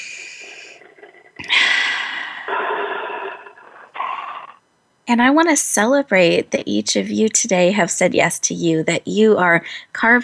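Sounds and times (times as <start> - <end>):
group taking a collective breath: 0.0 - 4.6
speech: 5.1 - 10.2.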